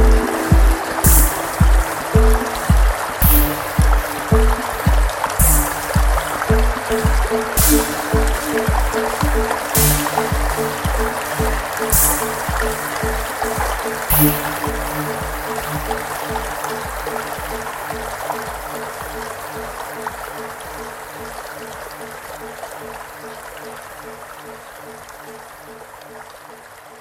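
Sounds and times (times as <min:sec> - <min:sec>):
rapid regular low thumping: 0:00.0 - 0:21.4
water rushing near a waterfall: 0:00.0 - 0:27.0.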